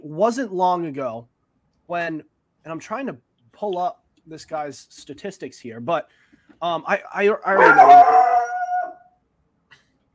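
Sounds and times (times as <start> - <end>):
speech: 0.0 - 1.3, 1.9 - 8.2
dog howling: 7.5 - 9.1.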